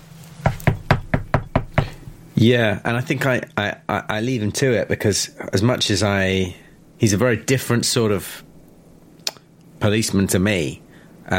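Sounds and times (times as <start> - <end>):
hard knocking on a door: 0.4 - 2.0
speech: 2.4 - 8.5, 9.8 - 11.3.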